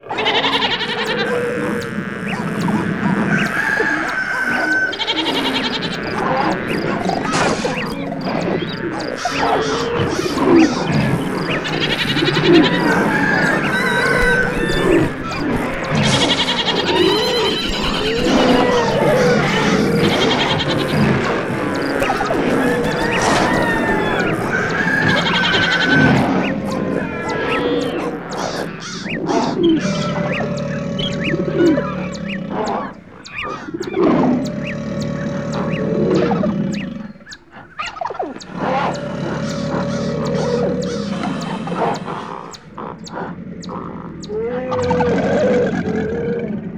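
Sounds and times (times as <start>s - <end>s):
animals moving into an ark: 0.0s - 46.5s
laughter: 0.1s - 36.8s.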